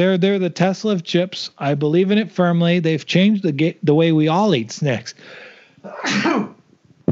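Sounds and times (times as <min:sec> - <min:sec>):
speech: 0:00.0 - 0:06.5
sneeze: 0:05.9 - 0:06.6.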